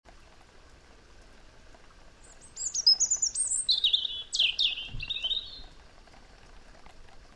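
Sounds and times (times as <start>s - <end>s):
European robin Erithacus rubecula singing: 2.2s - 5.7s.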